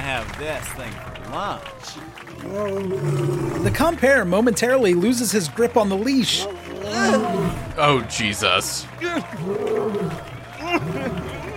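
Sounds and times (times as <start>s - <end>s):
speech: 0.2s - 11.0s
liger roaring: 2.3s - 3.8s, 6.6s - 7.7s, 9.2s - 11.5s
liger snarling: 2.4s - 3.8s, 9.2s - 11.5s
laughter: 6.1s - 11.5s.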